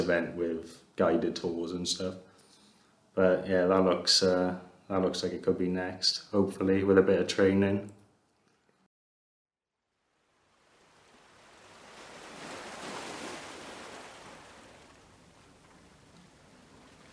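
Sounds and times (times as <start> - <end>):
speech: 0.0 - 2.3, 3.2 - 8.0
sea waves breaking on the shore: 10.2 - 17.1.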